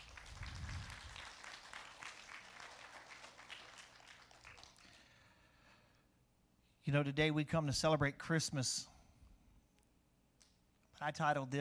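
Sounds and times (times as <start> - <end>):
crowd applauding: 0.0 - 5.2
speech: 6.8 - 8.9, 11.0 - 11.5.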